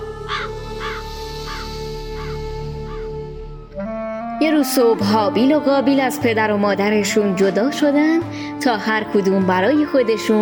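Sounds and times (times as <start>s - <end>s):
crow cawing: 0.2s - 3.2s
speech: 4.4s - 10.4s.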